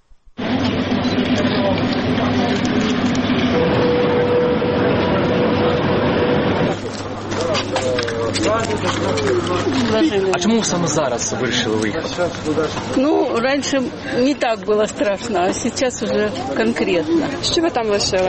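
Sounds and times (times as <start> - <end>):
loud continuous platform bustle at a busy station: 0.4 - 11.8
crowd chatter at a busy station: 0.4 - 18.2
evacuation train engine hum at a busy station: 0.4 - 18.2
speech: 10.1 - 18.2.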